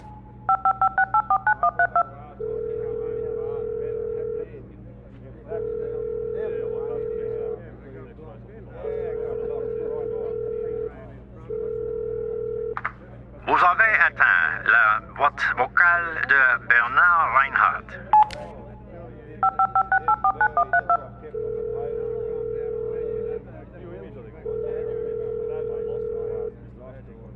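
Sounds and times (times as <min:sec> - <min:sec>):
cell phone keypad beeps dialing: 0:00.0 - 0:02.1, 0:19.4 - 0:21.0
faint low hum: 0:00.0 - 0:27.3.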